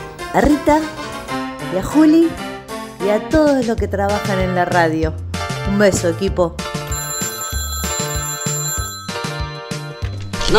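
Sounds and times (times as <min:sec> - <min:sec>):
speech: 0:00.3 - 0:01.0, 0:01.7 - 0:02.4, 0:03.0 - 0:06.6
telephone melodic ringtone: 0:06.8 - 0:10.5.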